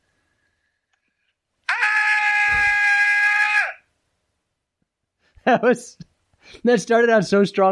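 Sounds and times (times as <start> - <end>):
man screaming: 1.6 - 3.9
speech: 5.5 - 7.7.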